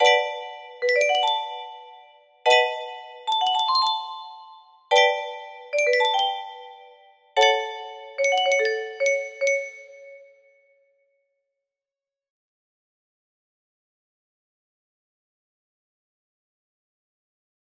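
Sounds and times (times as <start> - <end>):
bells: 0.0 - 10.4
music box: 0.0 - 10.5.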